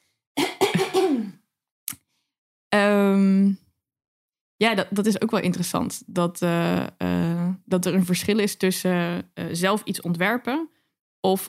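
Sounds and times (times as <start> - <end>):
raspy coughs: 0.4 - 1.4
speech: 2.8 - 3.6, 4.6 - 11.4.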